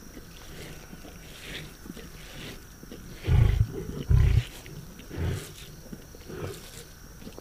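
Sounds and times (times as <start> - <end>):
lion roaring with deep grunts: 3.2 - 5.5.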